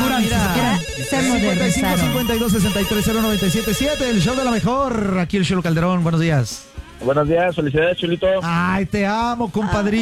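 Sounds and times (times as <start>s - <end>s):
telephone ringtone: 0.0s - 4.6s
speech: 1.0s - 9.9s.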